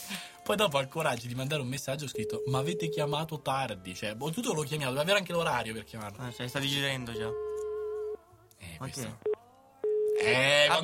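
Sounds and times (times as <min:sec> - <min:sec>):
speech: 0:00.1 - 0:07.5, 0:08.8 - 0:09.3, 0:10.2 - 0:10.8
telephone busy tone after the other party hangs up: 0:07.2 - 0:08.2, 0:09.2 - 0:10.2.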